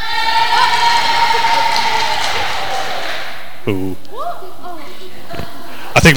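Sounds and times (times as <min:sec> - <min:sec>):
crowd cheering for a team: 0:00.0 - 0:04.6
speech: 0:03.7 - 0:06.1.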